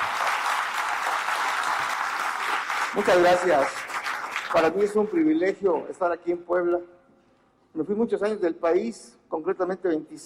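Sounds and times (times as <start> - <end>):
audience applause at a speaking event in Puebla: 0.0 - 5.3
speech: 2.9 - 3.8, 4.5 - 7.0, 7.7 - 10.2.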